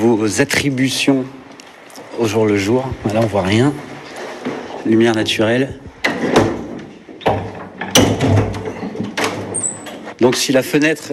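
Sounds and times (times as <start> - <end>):
speech: 0.0 - 1.4, 2.2 - 3.9, 4.8 - 5.9, 10.2 - 11.1
heavy exterior metal window shutters clunking open: 0.6 - 10.6.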